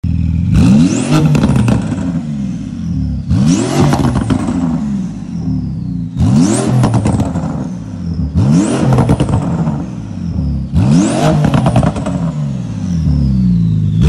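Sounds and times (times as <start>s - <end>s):
Porsche GT2RS titanium exhaust car engine: 0.0s - 14.0s.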